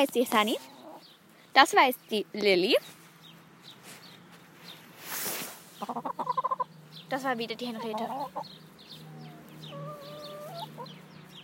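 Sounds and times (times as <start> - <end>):
speech: 0.0 - 0.8, 1.6 - 3.0, 5.8 - 6.3, 7.1 - 8.6
hen clucking softly: 5.8 - 6.7, 7.5 - 11.0.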